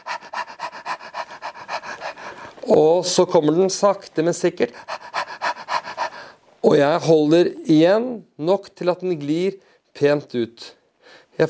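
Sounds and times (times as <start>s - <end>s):
rapid panting breaths during childbirth: 0.0s - 2.7s, 4.6s - 6.5s
speech: 2.6s - 5.0s, 6.6s - 10.8s.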